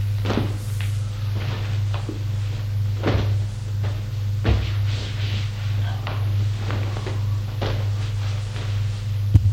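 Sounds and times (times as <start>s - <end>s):
soft rustling of someone getting into bed: 0.0s - 9.3s
steady low hum: 0.0s - 9.5s.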